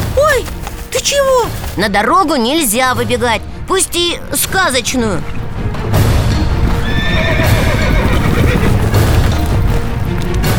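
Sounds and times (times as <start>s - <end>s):
heavy horse hooves galloping along a road with a rider: 0.0s - 10.5s
speech: 1.1s - 5.4s
horse neighing: 5.2s - 10.0s.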